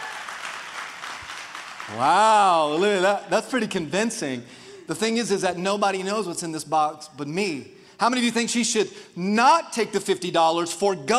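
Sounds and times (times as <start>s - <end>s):
audience applause: 0.0s - 3.2s
speech: 1.9s - 11.1s.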